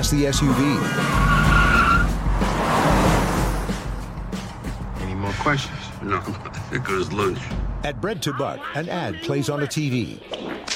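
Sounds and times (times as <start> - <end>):
speech: 0.0 - 1.2, 5.4 - 10.7
car tires squealing in a skid: 0.0 - 4.0
rumbling road noise: 0.0 - 8.6
heavy car engine roar: 0.3 - 4.2.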